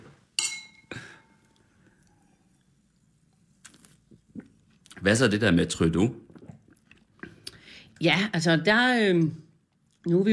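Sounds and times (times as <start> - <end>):
glasses clinking in a toast: 0.4 - 1.4
speech: 5.0 - 6.2, 8.0 - 9.4, 10.0 - 10.3.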